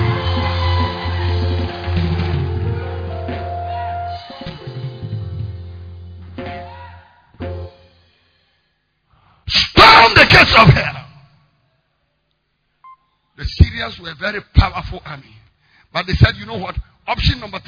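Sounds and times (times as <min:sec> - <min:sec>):
audience clapping: 0:00.0 - 0:03.5
audience shouting: 0:00.0 - 0:04.1, 0:06.5 - 0:07.3
audience screaming: 0:00.0 - 0:04.6
sustained low musical tones: 0:00.0 - 0:06.7
speech: 0:10.5 - 0:10.9, 0:13.8 - 0:17.6.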